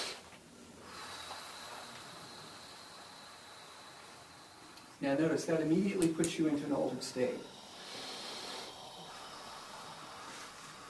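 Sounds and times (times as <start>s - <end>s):
slow deep exhale through mouth: 0.0s - 5.0s, 7.3s - 10.8s
speech: 5.0s - 7.6s.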